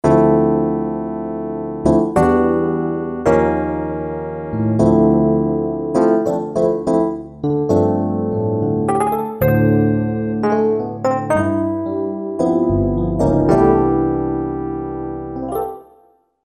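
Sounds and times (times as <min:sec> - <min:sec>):
Generalmusic Equinox electric piano: 0:00.0 - 0:16.2.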